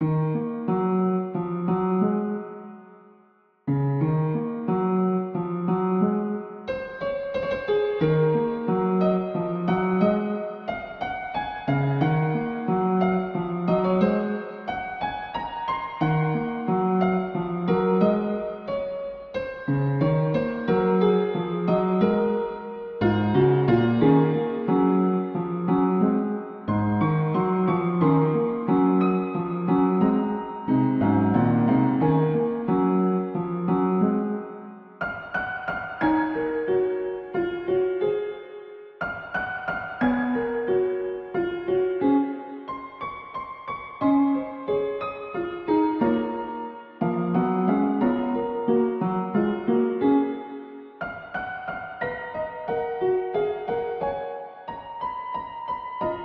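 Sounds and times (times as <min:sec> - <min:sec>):
piano in ruins: 0:00.0 - 0:56.2.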